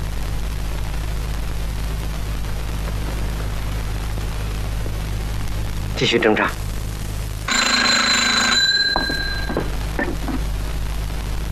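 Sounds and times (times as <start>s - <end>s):
low steady hum: 0.0s - 11.5s
speech: 6.0s - 6.7s
telephone bell ringing: 7.5s - 10.4s.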